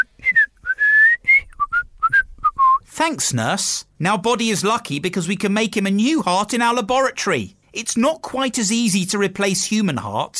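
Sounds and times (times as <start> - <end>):
person whistling a short tune: 0.0 - 2.9
speech: 3.0 - 10.3.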